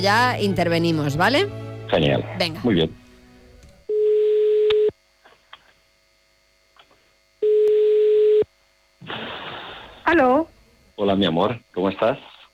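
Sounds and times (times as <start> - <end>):
speech: 0.0 - 3.0, 10.1 - 12.3
telephone ringback tone while a call is placed: 3.9 - 4.9, 7.4 - 8.5.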